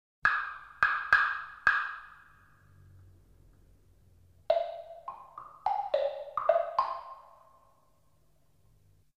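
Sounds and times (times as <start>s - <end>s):
woodblock: 0.2s - 2.9s, 4.4s - 8.0s.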